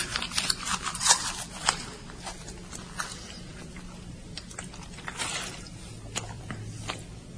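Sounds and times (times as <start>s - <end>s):
person chewing rolled-up torn book pages: 0.0s - 7.1s.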